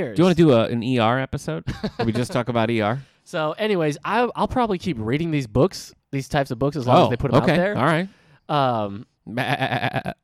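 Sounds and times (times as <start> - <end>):
speech: 0.0 - 10.2
laughter: 1.7 - 2.7, 9.3 - 10.2
person imitating a sheep bleating: 9.3 - 10.2.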